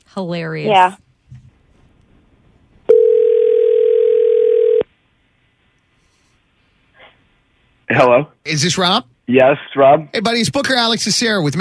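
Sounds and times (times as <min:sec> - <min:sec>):
speech: 0:00.2 - 0:01.0, 0:07.9 - 0:11.6
telephone dial tone: 0:02.9 - 0:04.8.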